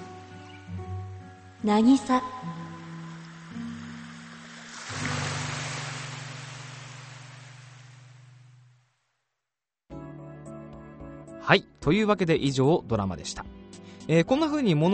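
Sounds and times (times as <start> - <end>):
ocean wave washing on the shore: 0.0 - 8.8
speech: 1.6 - 2.6, 11.5 - 14.9.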